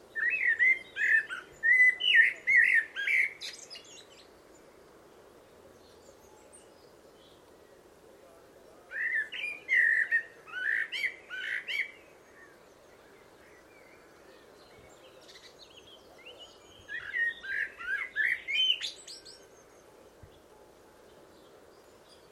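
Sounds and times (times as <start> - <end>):
bird calling in slurred chirps and twittering notes: 0.1 - 4.9, 8.7 - 22.2.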